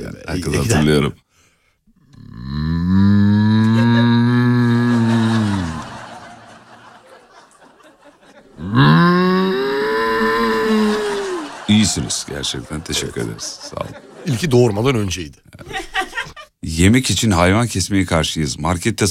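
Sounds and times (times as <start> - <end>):
speech: 0.0 - 1.2, 12.0 - 15.8, 16.7 - 19.0
breathy noise: 1.3 - 6.3, 8.6 - 11.8
teacher imitating a cow mooing: 2.1 - 6.0, 8.6 - 11.5
laughter: 3.4 - 14.8, 15.5 - 16.5.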